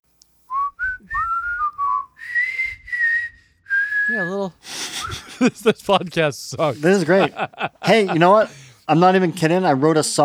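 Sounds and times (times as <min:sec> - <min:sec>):
person whistling a short wavering tune: 0:00.5 - 0:04.3, 0:05.0 - 0:05.3
speech: 0:04.1 - 0:10.2
laughter: 0:04.6 - 0:08.8.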